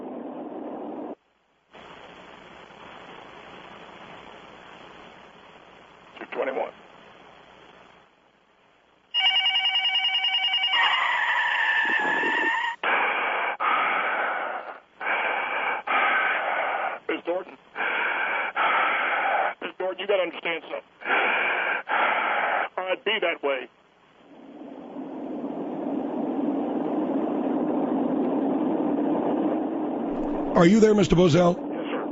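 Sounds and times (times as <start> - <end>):
steady hiss and static: 0.0 - 32.0
speech: 6.3 - 6.9, 20.2 - 21.3, 22.9 - 23.7, 30.6 - 31.6
telephone ringing: 9.1 - 12.5.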